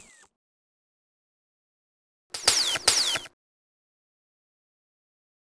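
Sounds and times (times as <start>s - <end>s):
lightsaber hum: 2.4s - 3.3s.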